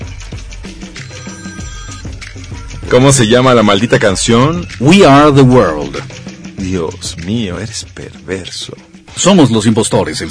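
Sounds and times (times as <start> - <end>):
telephone ringing with a melodic ringtone: 0.2 - 7.5
speech: 2.9 - 10.2.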